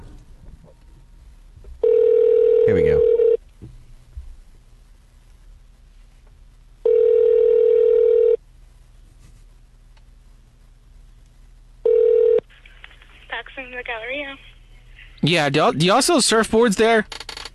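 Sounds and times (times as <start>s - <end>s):
faint hiss: 0.0s - 17.5s
phone ringback tone: 1.8s - 3.4s, 6.8s - 8.4s, 11.8s - 12.4s
speech: 13.7s - 14.5s, 15.2s - 17.2s.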